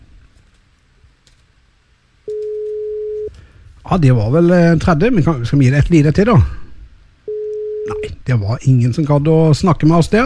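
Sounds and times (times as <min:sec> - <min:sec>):
faint telephone line hiss: 0:00.0 - 0:09.0
steady ringing tone of an outgoing telephone call: 0:02.3 - 0:03.3, 0:07.3 - 0:08.1
speech: 0:03.9 - 0:06.6, 0:08.0 - 0:10.2.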